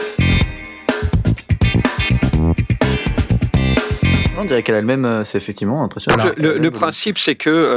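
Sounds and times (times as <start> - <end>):
band music with reverb and guitar turned down: 0.0 - 4.6
speech: 4.4 - 7.7.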